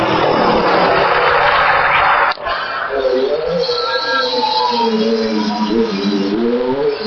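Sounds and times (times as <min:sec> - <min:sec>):
loud rush of noise: 0:00.0 - 0:07.0
racing car engines revving on a hill climb track in dense woodland: 0:00.0 - 0:07.0.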